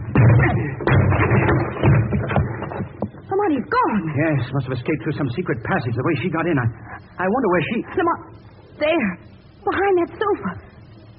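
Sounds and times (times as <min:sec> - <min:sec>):
door being broken down: 0:00.0 - 0:03.1
speech: 0:03.9 - 0:10.6.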